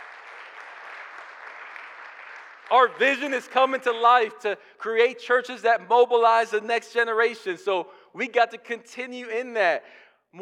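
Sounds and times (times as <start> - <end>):
church congregation applauding: 0.0 - 3.9
speech: 2.7 - 10.4.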